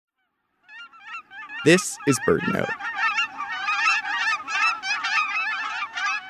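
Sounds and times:
speech: 0:01.6 - 0:03.0
Aleutian Cackling Goose giving short high nasal honks: 0:02.2 - 0:06.2.

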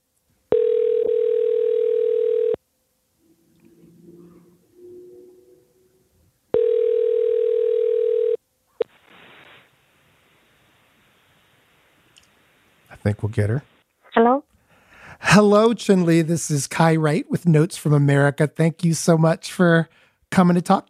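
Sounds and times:
telephone ring tone: 0:00.5 - 0:02.6, 0:06.5 - 0:08.4
speech: 0:13.0 - 0:13.7, 0:15.4 - 0:20.8.

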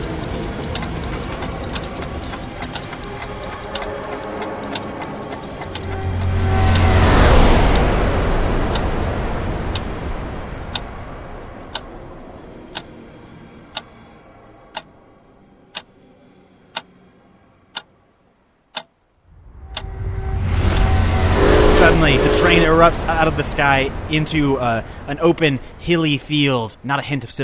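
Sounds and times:
clocks ticking: 0:00.0 - 0:12.9, 0:19.7 - 0:19.9, 0:20.6 - 0:24.0
rumble: 0:00.0 - 0:18.4, 0:19.2 - 0:27.2
speech: 0:22.8 - 0:27.4.

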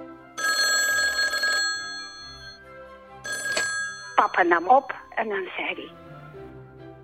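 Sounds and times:
telephone ringing with a harsh bell trill: 0:00.3 - 0:05.5
speech: 0:04.2 - 0:06.1.

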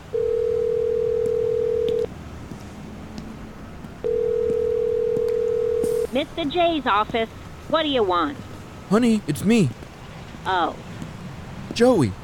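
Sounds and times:
phone call ringback tone on the line: 0:00.1 - 0:02.1, 0:04.1 - 0:06.1
speech: 0:06.2 - 0:09.8, 0:10.4 - 0:10.9, 0:11.8 - 0:12.2.

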